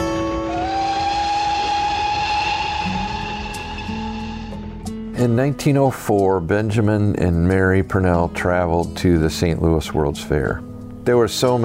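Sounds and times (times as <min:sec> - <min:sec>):
miniature ride-on train rolling along its rails: 0:00.0 - 0:04.4
speech: 0:05.2 - 0:11.6.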